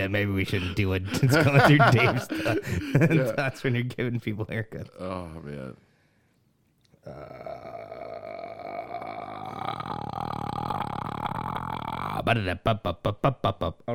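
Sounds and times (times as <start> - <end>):
speech: 0.0 - 5.9, 7.0 - 7.7, 12.2 - 13.9
laughter: 1.1 - 3.7
long drawn-out burp: 6.9 - 12.3.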